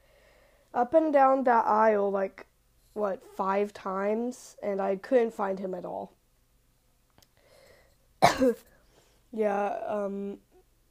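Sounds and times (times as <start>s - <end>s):
speech: 0.8s - 6.2s, 8.2s - 8.7s, 9.3s - 10.4s
person coughing: 8.2s - 8.8s.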